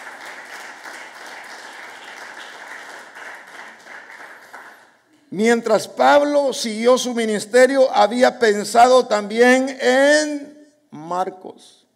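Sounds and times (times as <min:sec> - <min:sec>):
large crowd clapping hands as applause to God: 0:00.0 - 0:05.0
speech: 0:05.3 - 0:10.5, 0:11.1 - 0:11.8.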